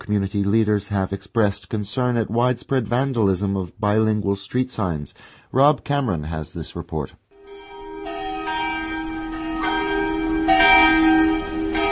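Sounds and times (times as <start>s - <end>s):
speech: 0.1s - 7.2s
church bells ringing across a town: 7.4s - 11.9s.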